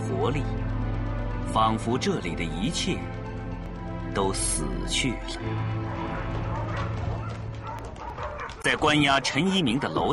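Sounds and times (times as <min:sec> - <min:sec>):
speech: 0:00.2 - 0:00.8, 0:01.5 - 0:03.2, 0:04.1 - 0:06.0, 0:08.6 - 0:10.1
police dogs barking and yelping in the corridor of a detention building: 0:05.4 - 0:10.1.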